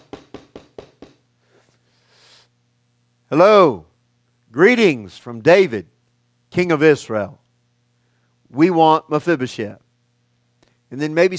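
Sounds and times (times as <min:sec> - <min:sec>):
firm knocking on a door: 0:00.0 - 0:01.2
quiet room hum: 0:00.0 - 0:11.3
speech: 0:03.3 - 0:03.9, 0:04.5 - 0:05.9, 0:06.5 - 0:07.4, 0:08.5 - 0:09.8, 0:10.9 - 0:11.3.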